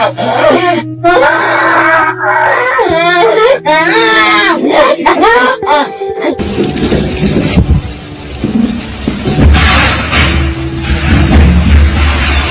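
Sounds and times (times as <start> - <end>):
child whimpering and wailing frightened by fireworks: 0.0 - 6.4
New Year's Eve fireworks booming and crackling: 6.4 - 12.4.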